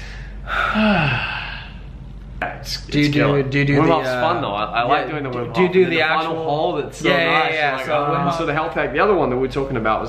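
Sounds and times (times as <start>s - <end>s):
deep breath in and out with a voiced sigh: 0.0s - 2.0s
speech: 2.7s - 10.0s.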